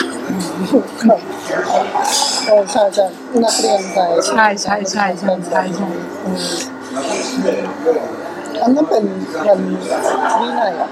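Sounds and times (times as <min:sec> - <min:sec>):
indistinct chatter in a busy café: 0:00.0 - 0:10.9
speech: 0:00.6 - 0:10.9
light clinks of dishes and cutlery in a busy café: 0:02.0 - 0:03.8.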